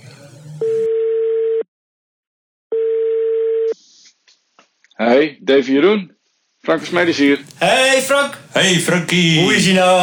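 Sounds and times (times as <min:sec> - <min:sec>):
telephone ringback tone as an outgoing call connects: 0:00.6 - 0:01.6, 0:02.7 - 0:03.8
speech: 0:05.1 - 0:10.0.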